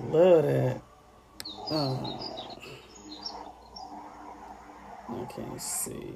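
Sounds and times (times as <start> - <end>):
speech: 0.1 - 0.9, 1.7 - 2.3, 5.1 - 6.1
bird singing in chirping phrases: 1.4 - 4.5.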